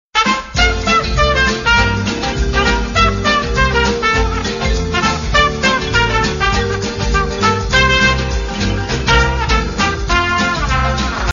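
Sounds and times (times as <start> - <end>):
brass band ringtone: 0.2 - 11.3.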